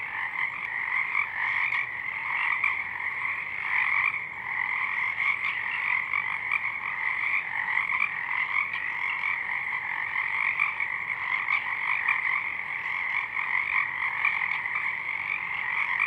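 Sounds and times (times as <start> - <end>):
Pacific chorus frogs calling in full chorus at dusk: 0.0 - 16.0.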